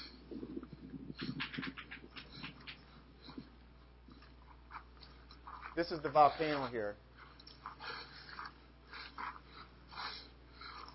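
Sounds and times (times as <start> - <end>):
heavy labored breathing while climbing a volcano: 0.0 - 1.5, 2.1 - 4.7, 5.3 - 10.9
speech: 5.8 - 7.1.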